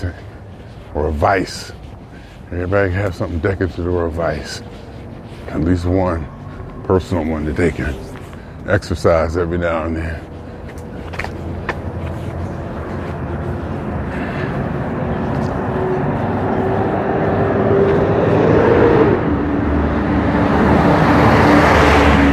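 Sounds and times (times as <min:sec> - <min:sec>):
speech: 0:00.0 - 0:00.2, 0:00.9 - 0:01.8, 0:02.5 - 0:04.8, 0:05.5 - 0:10.3
heavy debris truck driving past on a road: 0:12.6 - 0:22.3.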